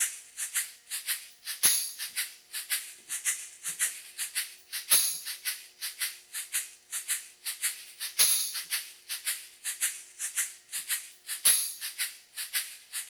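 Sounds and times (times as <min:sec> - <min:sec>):
shaker percussion loop in three-four time: 0:00.0 - 0:13.0
tambourine percussion loop in three-four time: 0:01.4 - 0:02.3, 0:04.8 - 0:06.0, 0:07.7 - 0:08.9, 0:11.4 - 0:12.6.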